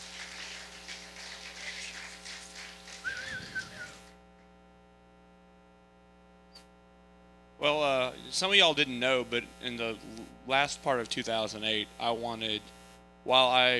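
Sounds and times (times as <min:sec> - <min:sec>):
noisy cheering or clapping: 0:00.0 - 0:04.0
steady electrical hum: 0:00.0 - 0:13.7
short sharp whistles from a church audience: 0:02.6 - 0:04.1
speech: 0:07.6 - 0:13.7.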